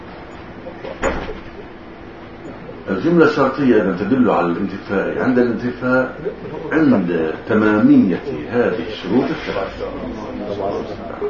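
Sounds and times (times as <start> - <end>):
faint murmur: 0.0 - 11.2
room hum: 0.0 - 11.2
door pushed shut with a muffled thud: 1.0 - 1.5
speech: 2.9 - 11.2
laughter: 5.0 - 11.2.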